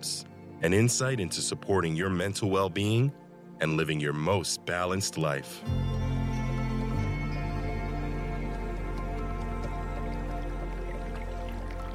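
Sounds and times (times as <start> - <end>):
speech: 0.6 - 6.0
low sustained tonal hum: 5.6 - 11.9
creek flowing softly: 5.7 - 11.9
small water trickles and drips: 7.9 - 11.9.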